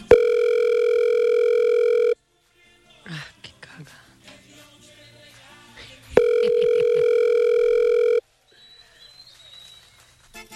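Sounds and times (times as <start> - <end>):
ringback tone of an unanswered telephone call: 0.1 - 2.1, 6.2 - 8.2.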